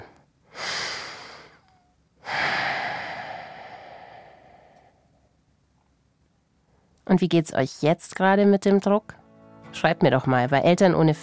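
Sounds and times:
person taking a slow deep breath: 0.5 - 5.3
speech: 7.1 - 11.2.

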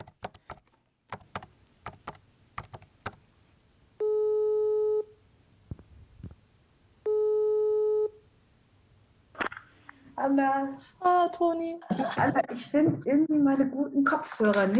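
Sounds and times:
clicks and small tapping noises: 0.0 - 3.2
electronic ringback tone of an outgoing phone call: 4.0 - 5.2, 7.0 - 8.2
speech: 10.2 - 14.7
laughter: 11.8 - 12.8.

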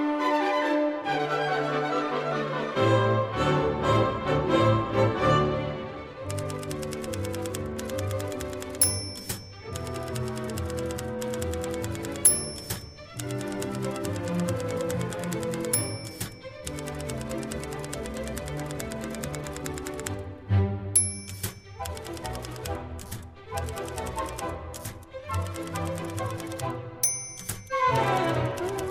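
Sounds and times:
lively orchestral piece: 0.0 - 28.9
old typewriter keys clacking: 6.3 - 20.2, 21.0 - 28.9
typewriter carriage-return bell ding: 7.9 - 17.5, 21.0 - 22.7, 27.0 - 28.9.

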